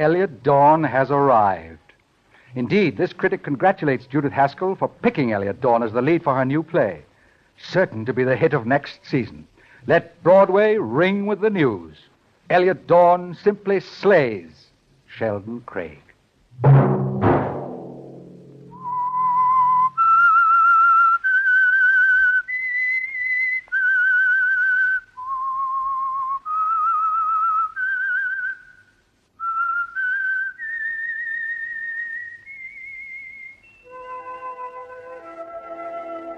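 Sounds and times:
speech: 0.0 - 1.8, 2.5 - 14.6, 15.2 - 16.0, 16.6 - 17.0
soft instrumental chords: 16.6 - 19.2
low resonant struck tone: 16.6 - 19.8
whistled melody: 18.7 - 28.7, 29.4 - 36.3.

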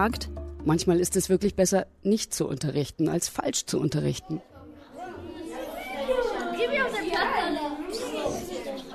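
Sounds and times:
speech: 0.0 - 4.5
classroom full of children chattering: 4.1 - 8.9.

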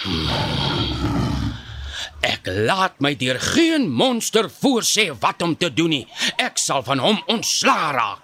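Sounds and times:
lion roaring: 0.0 - 2.3
speech: 2.2 - 8.2.

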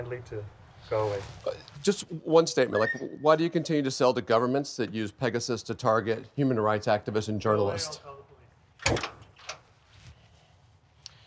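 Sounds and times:
speech: 0.0 - 8.2, 8.8 - 9.1
door being shut: 8.8 - 9.6.

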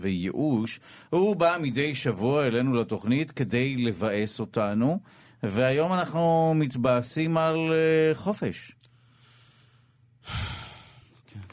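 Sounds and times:
speech: 0.0 - 8.8, 10.2 - 10.5
heavy breathing: 9.0 - 11.2.

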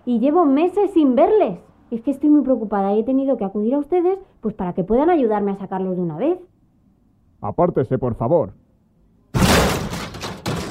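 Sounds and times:
speech: 0.1 - 6.5, 7.4 - 8.6
door forced open with splintering crash: 9.4 - 10.6
heavy impact: 9.4 - 10.6.

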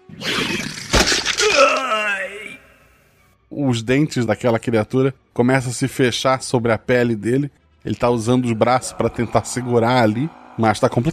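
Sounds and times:
magical barrier cracking and shattering: 0.2 - 1.9
speech: 3.6 - 11.1.

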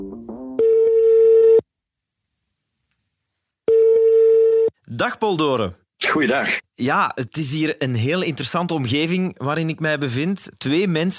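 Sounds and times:
outgoing telephone call ring tone: 0.6 - 1.6, 3.7 - 4.7
speech: 5.0 - 11.1.

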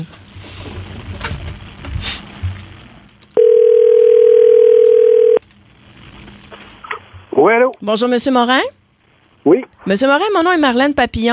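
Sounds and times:
telephone ringback tone while placing a call: 3.4 - 5.4
speech: 7.5 - 8.8, 9.4 - 11.3.

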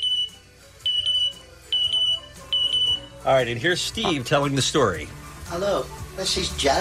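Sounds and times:
bird mimicking smoke detector beeps: 0.0 - 3.1
speech: 3.2 - 6.7.

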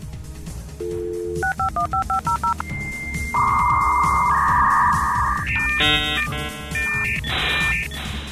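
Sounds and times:
28K or 56K dial-up modem dialing beeps: 0.8 - 8.2
steady high dial-up modem tone: 2.6 - 8.1.

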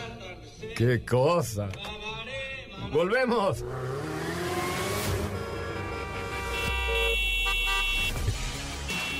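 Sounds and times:
speech: 0.7 - 1.9, 2.9 - 4.4
car horn honking in long sustained blasts: 5.1 - 9.1.

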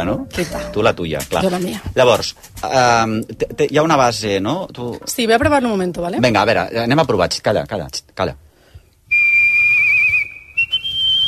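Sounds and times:
speech: 0.0 - 8.4
person whistling a sustained high note: 9.1 - 11.2.

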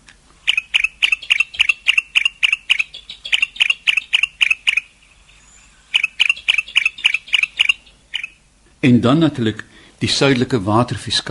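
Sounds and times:
bar-throated apalis calling: 0.4 - 8.6
speech: 8.8 - 11.2.

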